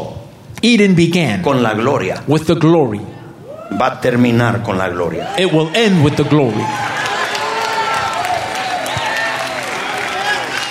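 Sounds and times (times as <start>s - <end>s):
speech: 0.6s - 3.1s, 3.7s - 7.1s
church audience applauding: 5.3s - 10.6s.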